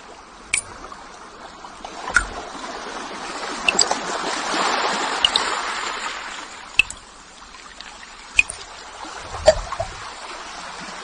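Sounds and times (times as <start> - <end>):
crisp ticks and drips of water: 0.0 - 1.2, 1.8 - 2.6, 3.6 - 4.2, 5.1 - 6.0, 6.6 - 10.1
water falling and trickling: 0.0 - 11.0.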